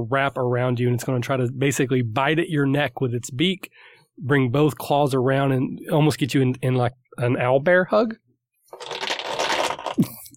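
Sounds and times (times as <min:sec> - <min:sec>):
speech: 0:00.0 - 0:09.0
many dice rattling and tumbling on a table: 0:08.7 - 0:10.0.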